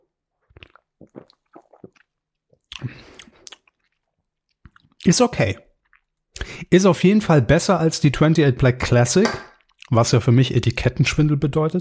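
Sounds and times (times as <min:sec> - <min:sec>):
chewing and smacking while tasting a sour-cherry flavoured product: 0:00.4 - 0:05.0
speech: 0:05.1 - 0:05.7, 0:06.7 - 0:11.8.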